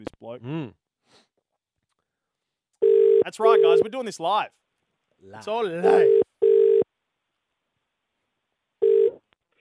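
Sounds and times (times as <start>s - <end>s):
speech: 0.0s - 1.2s, 3.3s - 4.6s, 5.2s - 6.2s
telephone tone from an outgoing call: 2.8s - 3.9s, 5.8s - 6.8s, 8.8s - 9.2s.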